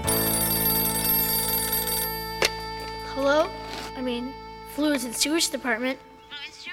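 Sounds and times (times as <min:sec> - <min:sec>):
telephone ringing with bell-like chimes: 0:00.1 - 0:03.0
speech: 0:03.3 - 0:06.5.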